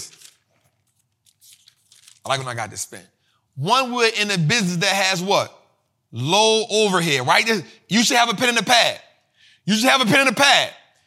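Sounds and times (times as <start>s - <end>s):
paper being handled, crinkling and tearing: 0.0s - 2.7s
speech: 2.2s - 9.0s, 9.6s - 10.8s.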